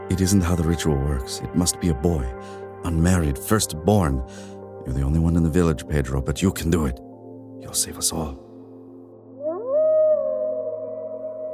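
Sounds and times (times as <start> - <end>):
speech: 0.1 - 8.5
wolf howling from the crest of a hill: 9.4 - 11.5.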